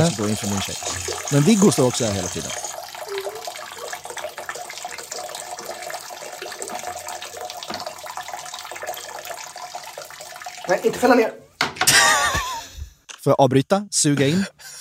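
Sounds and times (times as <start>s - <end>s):
speech: 0.0s - 2.6s, 10.7s - 11.4s, 13.2s - 14.7s
urine stream from a person urinating standing up splashing into toilet water: 0.0s - 11.2s
laughter: 11.9s - 12.8s.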